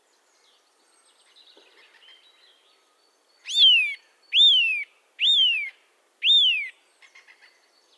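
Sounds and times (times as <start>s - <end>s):
Eurasian nuthatch Sitta europaea calling with loud whistled notes: 3.4s - 6.7s.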